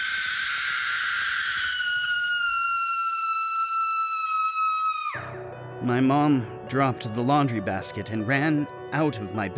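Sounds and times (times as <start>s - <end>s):
shrill scream: 0.0s - 5.4s
speech: 5.8s - 9.5s.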